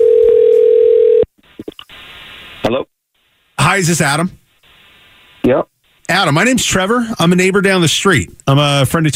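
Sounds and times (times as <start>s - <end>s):
loud steady telephone dial tone: 0.0s - 1.2s
speech: 3.7s - 4.4s, 5.5s - 9.1s.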